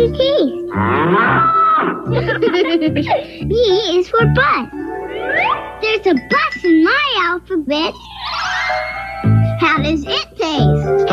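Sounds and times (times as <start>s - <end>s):
speech: 0.0s - 11.1s
cow mooing: 0.7s - 2.0s
laughter: 2.1s - 3.3s.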